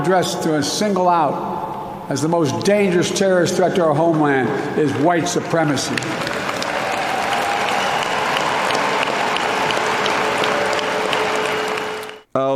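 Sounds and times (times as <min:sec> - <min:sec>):
speech: 0:00.0 - 0:06.4, 0:12.4 - 0:12.5
large crowd clapping: 0:04.8 - 0:12.3
faint cheering voices: 0:05.9 - 0:12.2.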